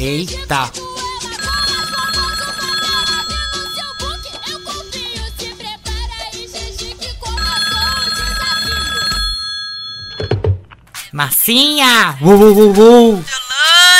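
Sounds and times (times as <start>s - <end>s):
speech: 0.0s - 1.5s, 11.2s - 13.4s
telephone ringing unanswered with bright electronic tone: 1.4s - 5.9s, 7.2s - 10.5s.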